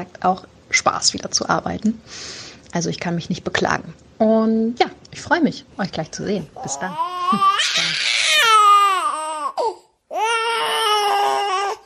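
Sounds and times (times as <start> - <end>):
speech: 0.0 - 8.0
baby crying loudly with strained high-pitched wails: 6.6 - 11.8.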